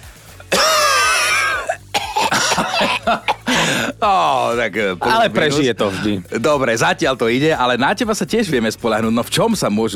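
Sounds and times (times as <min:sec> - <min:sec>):
man coughing raspily: 0:00.5 - 0:03.9
speech: 0:02.8 - 0:09.9
man gasping: 0:03.4 - 0:04.0.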